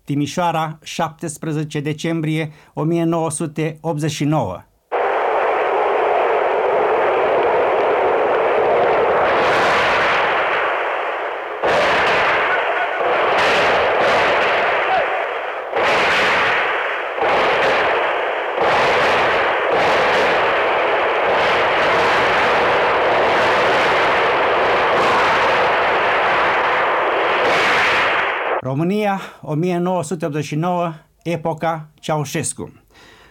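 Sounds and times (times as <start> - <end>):
speech: 0.1 - 4.7, 28.8 - 33.2
machine-gun fire in the streets: 4.9 - 28.6.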